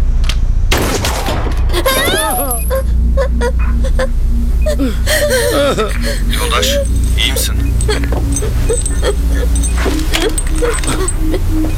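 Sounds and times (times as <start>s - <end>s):
gunshots: 0.7s - 1.7s
laughter: 1.7s - 11.7s
steady low drone: 1.7s - 11.7s
speech: 4.8s - 11.7s.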